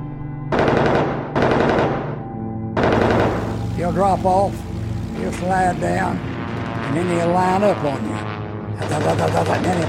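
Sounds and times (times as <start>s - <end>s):
machine-gun fire aimed at a B-17 bomber during an air attack: 0.5s - 2.2s, 2.8s - 3.8s, 8.8s - 9.8s
steady droning plane engine hum: 2.8s - 9.8s
speech: 3.8s - 6.3s, 6.9s - 8.3s, 8.8s - 9.8s.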